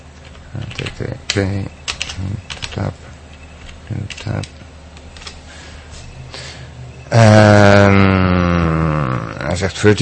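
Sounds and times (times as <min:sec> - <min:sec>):
typing on a computer keyboard: 0:00.2 - 0:04.6
person murmuring in a low indistinct voice: 0:00.6 - 0:03.0, 0:07.1 - 0:09.7
speech: 0:00.6 - 0:03.1, 0:03.9 - 0:04.6, 0:07.1 - 0:08.4, 0:09.6 - 0:09.9.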